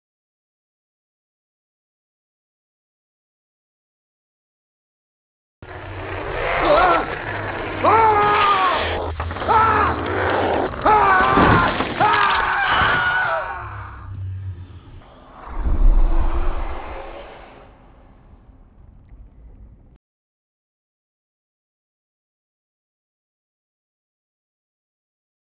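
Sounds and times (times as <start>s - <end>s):
mist scream: 6.3s - 18.4s.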